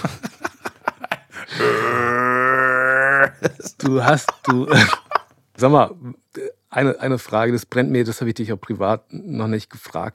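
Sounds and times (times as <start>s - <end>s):
laughter: 0.0s - 1.6s, 3.0s - 5.3s
long deep burp drawn out into a guttural growl imitating metal vocals: 1.5s - 3.4s
speech: 3.8s - 5.0s, 5.6s - 6.2s, 6.8s - 10.1s.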